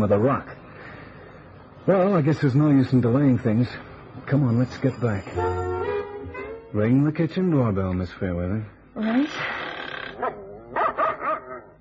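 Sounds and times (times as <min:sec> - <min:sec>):
speech: 0:00.0 - 0:00.6, 0:01.8 - 0:05.8, 0:06.7 - 0:09.5
dog barking at a house: 0:10.2 - 0:11.7.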